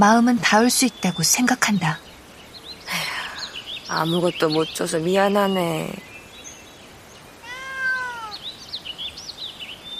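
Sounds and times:
speech: 0.0 - 2.1, 3.9 - 6.1
cat meowing: 7.4 - 8.4.

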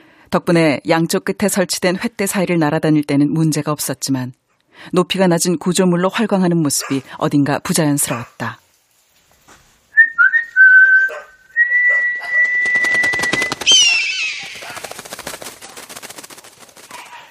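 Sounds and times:
speech: 0.3 - 8.6
loud human whistle calling a falcon: 10.0 - 13.6
rapid rattling clatter: 14.4 - 17.2.

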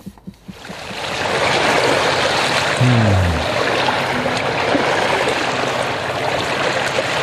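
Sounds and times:
ocean waves: 0.8 - 7.2
speech: 2.8 - 3.2
low murmur: 2.8 - 3.5.

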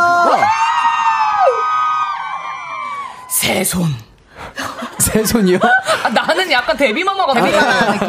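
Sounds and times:
audience screaming and cheering: 0.0 - 3.4
speech: 3.5 - 8.0
laughter: 4.6 - 8.0.

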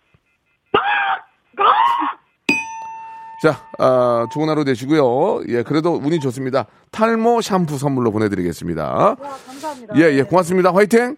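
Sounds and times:
person imitating an angry American crow cawing: 0.8 - 2.2
bright bell ding: 2.5 - 5.1
speech: 3.4 - 11.1.

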